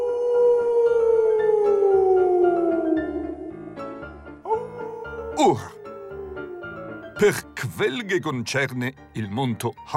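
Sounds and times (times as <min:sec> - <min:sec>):
wolf howling: 0:00.0 - 0:07.4
speech: 0:05.4 - 0:05.7, 0:07.2 - 0:09.9.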